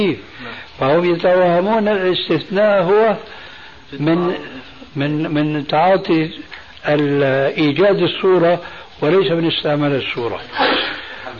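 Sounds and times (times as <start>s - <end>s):
speech: 0.0s - 11.3s
loud sharp sneeze: 10.5s - 11.1s.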